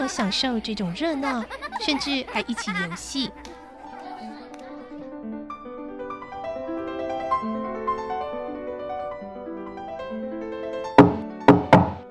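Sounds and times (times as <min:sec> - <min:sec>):
laughter: 0:00.0 - 0:05.1
speech: 0:00.1 - 0:03.5
soft melodic music: 0:01.6 - 0:12.1
sharp knocks on a door: 0:11.0 - 0:12.0.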